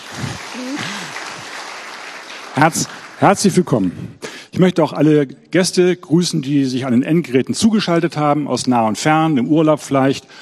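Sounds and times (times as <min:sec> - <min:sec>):
crowd clapping for the guests: 0:00.0 - 0:03.9
person cheering: 0:00.1 - 0:01.2
speech: 0:02.6 - 0:10.4.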